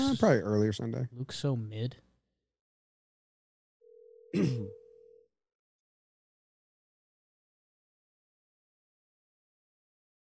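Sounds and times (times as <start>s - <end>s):
speech: 0.1s - 2.1s, 4.3s - 4.8s
outgoing phone call ringing tone: 3.8s - 5.3s.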